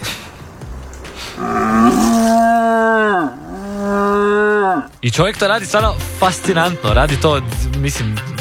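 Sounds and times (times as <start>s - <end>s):
person imitating a young stag's roar through a horn: 1.4s - 4.9s
speech: 5.0s - 8.3s.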